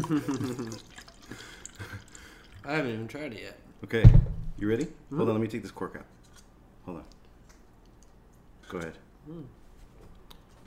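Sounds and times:
speech: 0:00.0 - 0:01.5, 0:02.6 - 0:06.2, 0:06.9 - 0:07.2, 0:08.7 - 0:09.6
wine pouring into a glass: 0:00.0 - 0:02.9.

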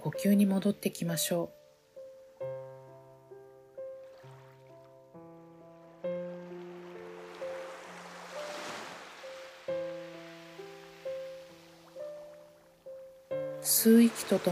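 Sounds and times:
speech: 0:00.0 - 0:01.6, 0:13.8 - 0:14.5
soft ocean wave washing ashore: 0:06.3 - 0:12.2, 0:13.6 - 0:14.5.

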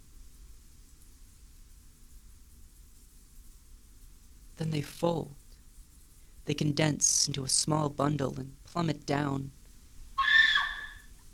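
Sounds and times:
speech: 0:04.6 - 0:05.4, 0:06.4 - 0:09.6
shrill piercing scream: 0:10.2 - 0:11.1.

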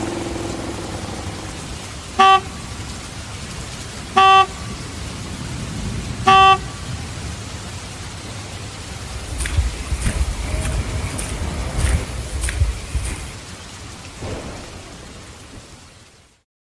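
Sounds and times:
low rumble of traffic: 0:00.0 - 0:16.0
motorcycle horn honking: 0:02.2 - 0:02.7, 0:04.2 - 0:04.7, 0:06.3 - 0:06.8.

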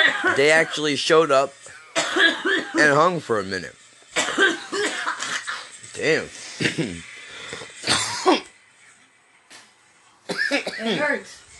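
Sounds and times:
speech: 0:00.2 - 0:03.8, 0:06.0 - 0:08.4, 0:10.8 - 0:11.4
harsh coughing: 0:01.8 - 0:02.9, 0:04.2 - 0:05.7, 0:06.6 - 0:07.0, 0:07.8 - 0:08.5, 0:10.3 - 0:11.1.

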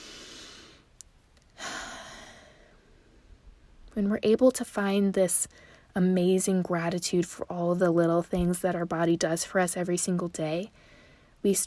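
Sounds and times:
deep breathing during a body-gratitude meditation: 0:00.0 - 0:00.9, 0:01.6 - 0:02.9, 0:10.8 - 0:11.4
speech: 0:04.0 - 0:11.6.

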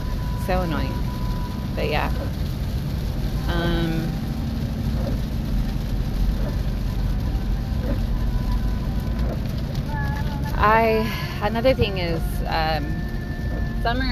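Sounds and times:
steady rain: 0:00.0 - 0:14.1
speech: 0:00.5 - 0:01.2, 0:01.8 - 0:02.6, 0:03.5 - 0:04.2, 0:10.6 - 0:13.0, 0:13.8 - 0:14.1
soft tonal sounds: 0:11.1 - 0:14.1.

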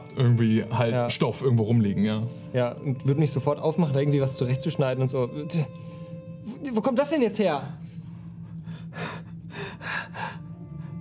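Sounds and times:
low steady hum: 0:00.0 - 0:11.0
speech: 0:00.2 - 0:06.0, 0:06.6 - 0:07.9
voice imitating a woman's short gasping breaths: 0:07.8 - 0:11.0.

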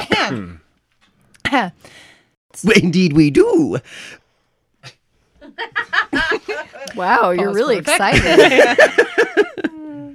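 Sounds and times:
person clearing throat: 0:00.0 - 0:00.7
speech: 0:01.5 - 0:04.2, 0:05.5 - 0:09.7
laughter: 0:05.4 - 0:07.2, 0:07.8 - 0:10.1.

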